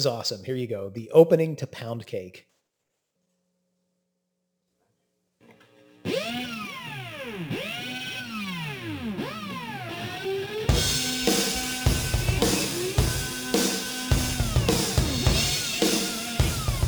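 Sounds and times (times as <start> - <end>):
speech: 0.0 - 2.5
electric guitar played with a power drill: 5.5 - 16.8.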